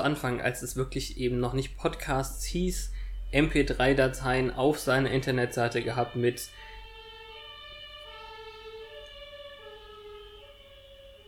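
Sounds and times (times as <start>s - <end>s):
speech: 0.0s - 6.7s
ambulance siren wailing: 2.8s - 11.2s.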